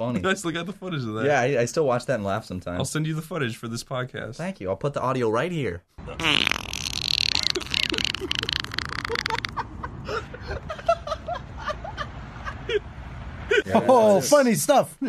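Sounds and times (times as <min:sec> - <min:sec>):
speech: 0:00.0 - 0:06.5, 0:13.8 - 0:15.0
long raspy fart in a parking lot: 0:06.0 - 0:09.6
people snickering and chuckling outdoors: 0:07.3 - 0:12.9.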